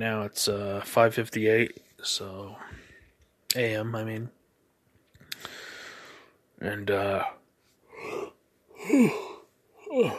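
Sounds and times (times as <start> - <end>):
speech: 0.0 - 2.8, 3.5 - 4.4, 6.6 - 7.4, 8.9 - 9.3, 10.0 - 10.1
person yawning in the early morning: 8.0 - 10.1.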